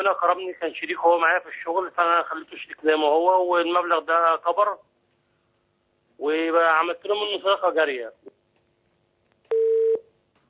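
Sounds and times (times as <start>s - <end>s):
speech: 0.0s - 4.9s, 6.2s - 8.4s
telephone disconnected tone beep after a line disconnects: 9.5s - 10.0s.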